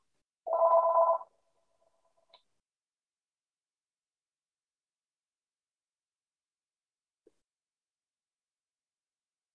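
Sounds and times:
telephone ringing in short trilling bursts: 0:00.5 - 0:02.0.

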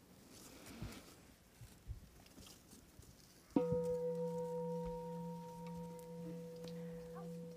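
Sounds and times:
quiet rustling: 0:00.0 - 0:07.5
bell rung to start listening practice: 0:03.6 - 0:07.5.

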